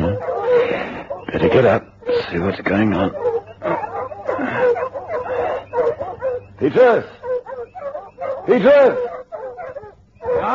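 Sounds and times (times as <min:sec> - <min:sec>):
faint steady hum: 0:00.0 - 0:10.5
several dogs barking and yipping excitedly: 0:00.0 - 0:10.5
speech: 0:01.3 - 0:04.7, 0:06.6 - 0:07.2, 0:08.5 - 0:09.1.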